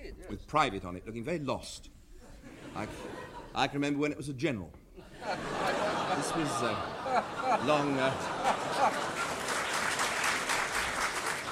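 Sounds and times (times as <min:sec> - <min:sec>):
speech: 0:00.2 - 0:01.9, 0:02.8 - 0:05.5, 0:06.2 - 0:09.2
audience laughing: 0:02.4 - 0:03.6, 0:05.0 - 0:11.5
audience applauding: 0:05.6 - 0:11.5.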